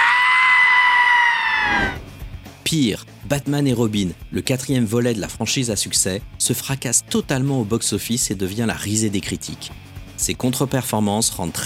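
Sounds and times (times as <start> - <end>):
person screaming in a shrill drawn-out voice: 0.0 - 2.0
speech: 2.7 - 11.6.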